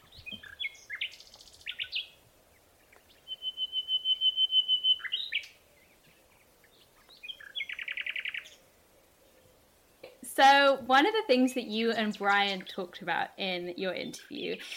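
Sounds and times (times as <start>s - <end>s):
common nightingale singing: 0.0s - 9.6s, 11.9s - 13.0s
speech: 10.4s - 14.7s.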